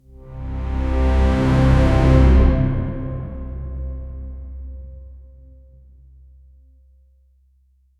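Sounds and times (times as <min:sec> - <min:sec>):
cinematic bass-heavy fanfare: 0:00.2 - 0:04.5.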